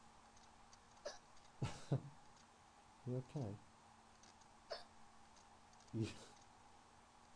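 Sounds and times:
adult speaking: 0:03.1 - 0:03.6, 0:06.0 - 0:06.3
speech: 0:03.1 - 0:03.7, 0:05.9 - 0:06.4
child hiccuping: 0:04.7 - 0:04.9.

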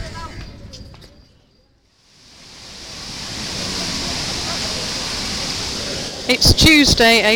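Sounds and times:
waterfall roaring: 0:02.2 - 0:07.3
speech: 0:06.3 - 0:07.3.

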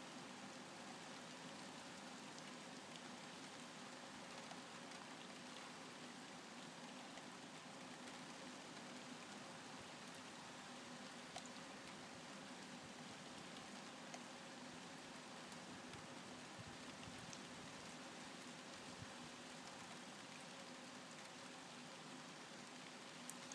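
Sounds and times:
faint scattered drips and patters of rain: 0:00.0 - 0:23.5
steady rain pouring down outdoors: 0:00.0 - 0:23.5.

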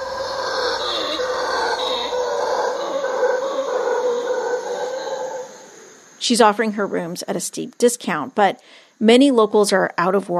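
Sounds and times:
howler monkeys roaring at night at a small hotel in Dominical: 0:00.0 - 0:06.2
steady hiss of insects at night: 0:00.0 - 0:10.3
speech: 0:06.3 - 0:10.3.

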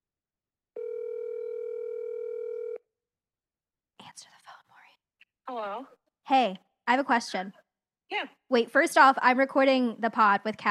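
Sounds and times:
outgoing phone call ringing tone: 0:00.8 - 0:02.8
speech: 0:05.5 - 0:10.6.

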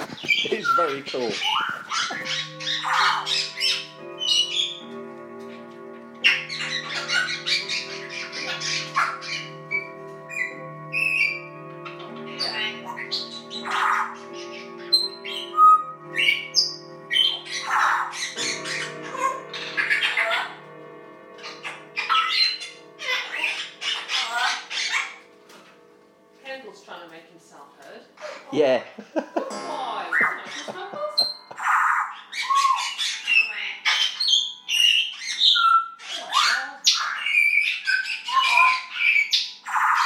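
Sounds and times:
pet bird squawking and chirping: 0:00.0 - 0:25.9, 0:29.7 - 0:40.0
pet bird whistling long steady tones: 0:00.1 - 0:04.9, 0:06.2 - 0:20.6, 0:30.1 - 0:40.0
speech: 0:00.7 - 0:03.4
laughter: 0:28.9 - 0:31.7.

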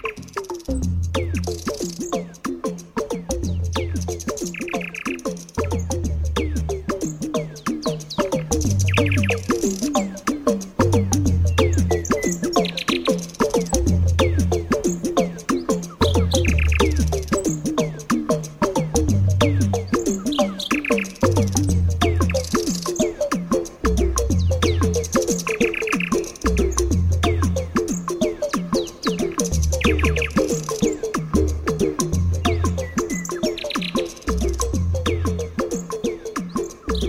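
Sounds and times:
nightingale singing: 0:00.0 - 0:37.0.

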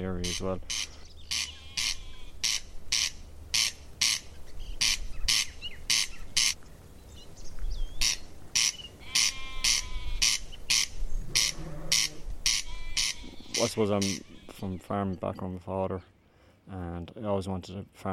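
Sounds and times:
speech: 0:00.0 - 0:01.0, 0:13.6 - 0:18.1
corncrake rasping call: 0:00.0 - 0:06.6, 0:07.9 - 0:14.9.

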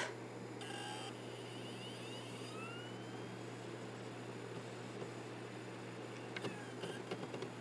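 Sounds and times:
CD player tray motor hum with rising whine: 0:00.0 - 0:07.5
CD player tray small clicks and clunks: 0:06.1 - 0:07.5.

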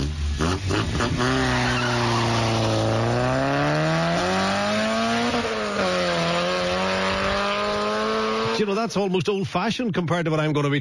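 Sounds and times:
car engine revving: 0:00.0 - 0:08.7
tyres squealing and skidding: 0:01.2 - 0:02.8
speech: 0:08.6 - 0:10.7.

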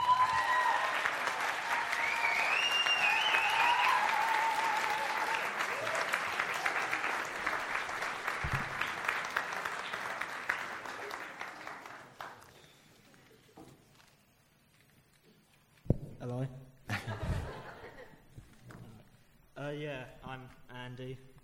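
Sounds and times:
whoops and cheers: 0:00.0 - 0:07.1
large crowd applauding: 0:00.0 - 0:13.6
laughter: 0:16.9 - 0:18.3.

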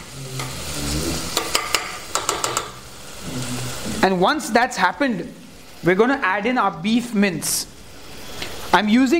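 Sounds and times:
onions sizzling in a pan: 0:00.0 - 0:09.1
utensil stirring onions and knocking against the pan: 0:01.4 - 0:02.8
speech: 0:04.0 - 0:07.8, 0:08.7 - 0:09.1.

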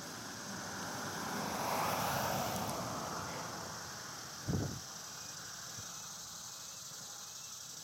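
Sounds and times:
vehicle passing along a road on a warm July day: 0:00.0 - 0:04.7
steady outdoor noise: 0:00.0 - 0:07.8.

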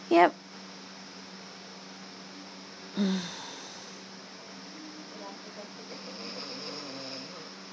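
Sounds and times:
speech: 0:00.1 - 0:00.4
person snoring with low rumbling snore: 0:03.0 - 0:04.0, 0:06.0 - 0:07.5.

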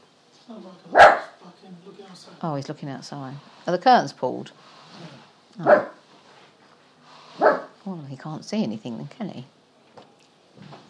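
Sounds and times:
speech: 0:00.5 - 0:01.0, 0:01.6 - 0:06.0, 0:07.4 - 0:09.6
dog barking: 0:00.9 - 0:01.4, 0:05.6 - 0:06.0, 0:07.4 - 0:07.8.

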